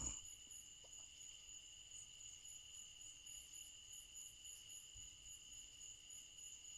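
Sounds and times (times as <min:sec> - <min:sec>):
southern crickets chirping: 0:00.0 - 0:06.7.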